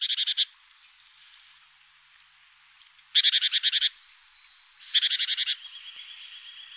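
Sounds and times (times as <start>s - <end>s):
Great tit giving harsh buzzy churring calls: 0.0s - 0.5s, 3.2s - 4.0s, 4.8s - 5.7s.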